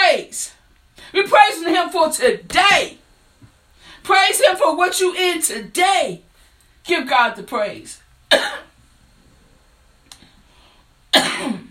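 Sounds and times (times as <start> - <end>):
speech: 1.1 - 3.0, 4.0 - 8.6
person coughing: 8.3 - 8.7, 11.1 - 11.6.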